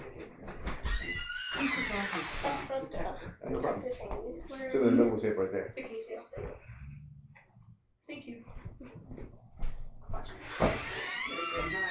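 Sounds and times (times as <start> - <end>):
front door opening with a drawn-out creaking squeal: 0.5 - 2.7, 10.3 - 11.9
speech: 2.4 - 6.6.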